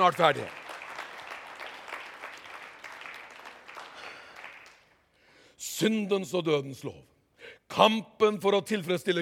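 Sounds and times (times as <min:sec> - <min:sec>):
speech: 0:00.0 - 0:00.6, 0:05.8 - 0:07.1, 0:07.7 - 0:09.2
crowd clapping in applause: 0:00.0 - 0:05.1.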